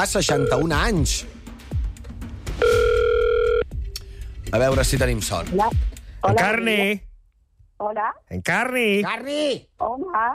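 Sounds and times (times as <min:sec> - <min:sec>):
speech: 0:00.0 - 0:01.4, 0:04.5 - 0:07.1, 0:07.8 - 0:10.3
telephone dial tone while placing a call: 0:02.6 - 0:03.6.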